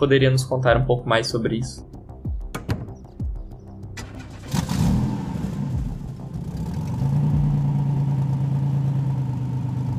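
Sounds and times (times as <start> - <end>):
speech: 0.0 - 2.0
car mechanical clicks and thuds: 2.4 - 3.4
car engine starting and driving off to a hotel: 4.0 - 9.9.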